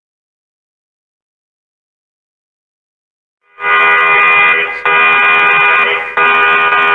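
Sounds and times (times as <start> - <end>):
loud harsh electronic alarm blaring: 3.5 - 6.9.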